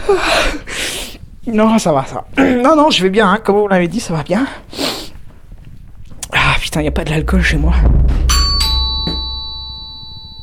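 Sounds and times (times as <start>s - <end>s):
speech: 0.1s - 0.8s, 1.5s - 4.8s, 6.8s - 8.2s
soft knocks or clicks: 6.8s - 10.0s
two-tone ding-dong doorbell chime: 8.3s - 10.4s.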